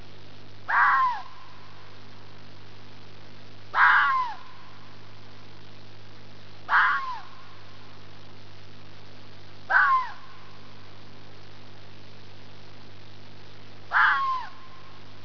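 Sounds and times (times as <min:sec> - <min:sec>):
fox yelling: 0:00.7 - 0:01.7, 0:03.7 - 0:04.9, 0:06.7 - 0:07.7, 0:09.7 - 0:10.6, 0:13.9 - 0:15.0.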